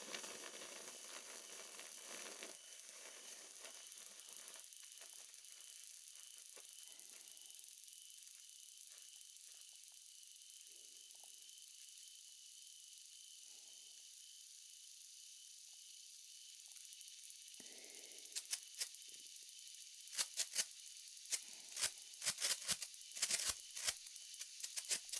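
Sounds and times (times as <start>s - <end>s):
large sparkler ball fizzing and crackling: 0.0s - 7.5s, 17.6s - 25.1s.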